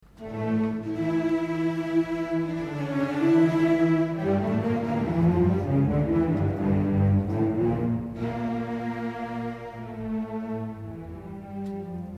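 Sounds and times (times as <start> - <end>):
instrumental recitative by cellos and double basses in unison: 0.0 - 12.1.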